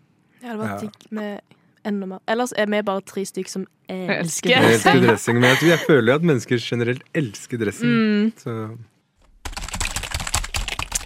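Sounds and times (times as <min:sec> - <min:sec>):
speech: 0:00.4 - 0:08.9
laughter: 0:04.5 - 0:06.2
rapid clicking and tapping: 0:09.2 - 0:11.0.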